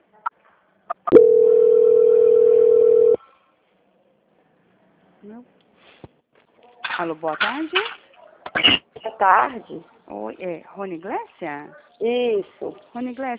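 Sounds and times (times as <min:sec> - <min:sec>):
steady mid-pitched telephone call-transfer tone: 0:01.1 - 0:03.2
speech: 0:07.0 - 0:08.0, 0:08.7 - 0:13.3.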